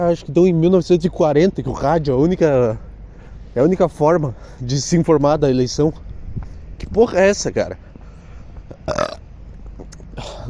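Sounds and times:
speech: 0.0s - 2.8s, 3.6s - 6.0s, 6.8s - 7.9s, 8.9s - 9.1s
soft throaty noises: 8.0s - 10.4s
loud raspy burp: 8.8s - 9.3s.

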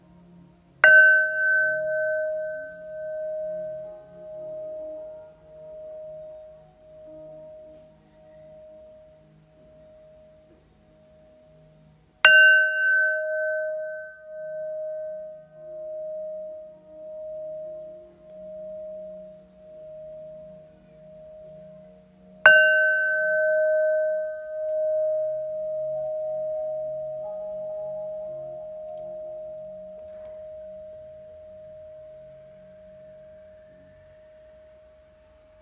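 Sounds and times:
Tibetan bell strikes: 0.8s - 8.8s, 12.2s - 34.9s.

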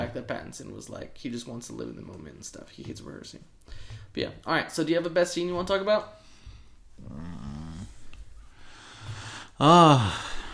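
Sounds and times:
speech: 0.1s - 6.2s, 9.6s - 10.4s
heavy raspy breathing into a microphone: 3.6s - 4.1s, 6.1s - 10.5s.

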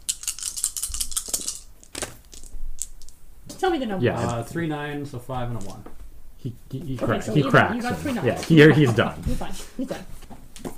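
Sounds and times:
five dice rolled across a hard surface in a game: 0.1s - 3.2s
speech: 3.6s - 10.2s
laughter: 7.0s - 10.1s.

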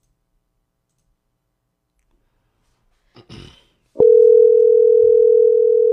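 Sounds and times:
telephone dial tone: 4.0s - 5.9s.

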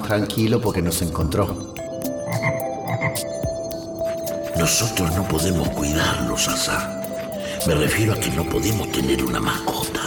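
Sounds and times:
speech: 0.1s - 3.5s, 4.6s - 7.0s, 7.6s - 10.0s
toad croaking: 2.3s - 3.3s.

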